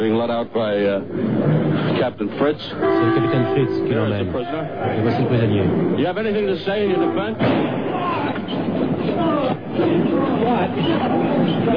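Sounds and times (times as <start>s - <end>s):
agitated crowd chatter with overlapping voices: 0.0s - 11.7s
speech: 0.2s - 7.9s, 8.5s - 11.7s
pistol gunshot fired at a prisoner led by police: 7.4s - 8.1s.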